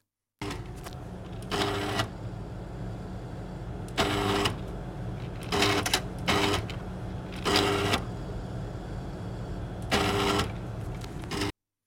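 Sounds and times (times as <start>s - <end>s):
gas chromatograph low mechanical hum: 0.4s - 11.5s
gas chromatograph printer-like whirring bursts: 0.5s - 11.5s.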